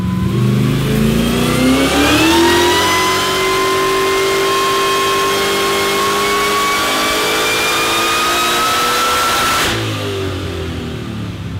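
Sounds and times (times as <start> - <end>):
VK Commodore engine with inverted H2650i supercharger revving: 0.0 - 11.4.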